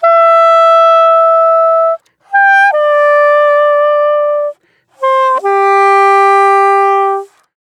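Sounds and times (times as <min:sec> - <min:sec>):
soprano saxophone: 0:00.0 - 0:07.5.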